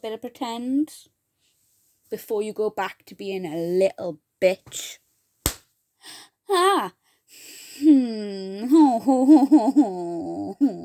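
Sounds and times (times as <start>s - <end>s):
speech: 0.0s - 1.2s, 2.1s - 5.0s, 6.0s - 10.8s
quick light playful slap: 5.4s - 5.7s
voice making whiny wavering drawn-out vocal sounds: 7.8s - 10.8s.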